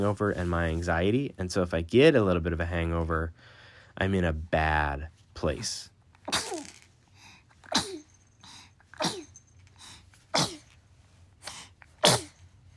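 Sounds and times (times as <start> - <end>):
speech: 0.0 - 6.6
sharp sneezes: 6.2 - 6.8, 7.6 - 8.2, 9.0 - 9.4, 10.3 - 10.7, 11.4 - 12.4.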